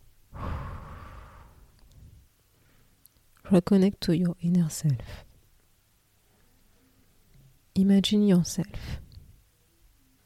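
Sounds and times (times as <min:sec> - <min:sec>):
deep breath in and out: 0:00.3 - 0:03.0
speech: 0:03.5 - 0:05.3, 0:07.8 - 0:09.0.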